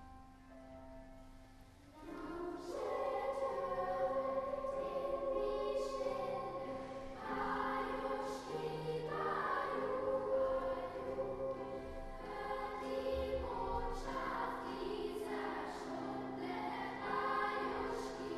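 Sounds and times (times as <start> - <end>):
lower school children's choir singing: 1.9 - 18.3.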